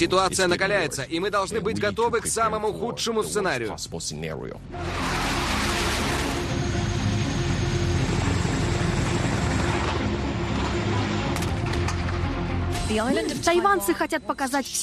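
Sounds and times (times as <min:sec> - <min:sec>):
speech: 0:00.0 - 0:05.4, 0:12.9 - 0:14.8
military airplane engines droning in flight: 0:04.9 - 0:12.7.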